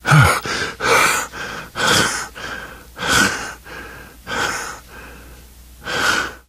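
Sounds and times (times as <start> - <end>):
minor exertion sounds: 0.0 - 5.2.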